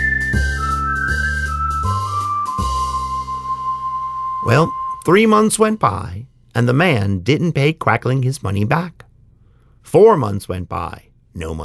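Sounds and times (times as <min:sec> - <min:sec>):
soft backing of sustained music chords: 0:00.0 - 0:05.1
person whistling a cheerful wandering tune: 0:00.0 - 0:05.5
speech: 0:04.5 - 0:09.0, 0:09.8 - 0:11.6.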